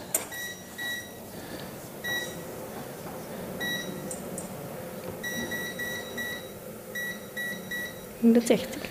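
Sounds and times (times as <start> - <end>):
hum: 0.0 - 8.9
short electronic beeps from oven control panel being set: 0.1 - 1.2, 2.0 - 2.5, 3.6 - 4.0, 5.2 - 8.2.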